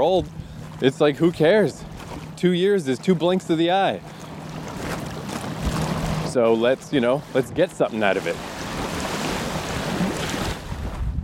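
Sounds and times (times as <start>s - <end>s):
speech: 0.0s - 4.1s, 6.3s - 8.5s
strong outdoor wind roaring across a microphone: 8.6s - 11.2s.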